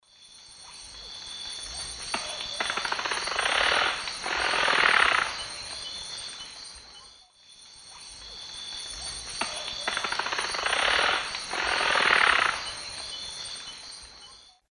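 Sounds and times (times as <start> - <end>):
Pipile pipile display wing rattle: 1.6 - 6.5, 8.1 - 13.2.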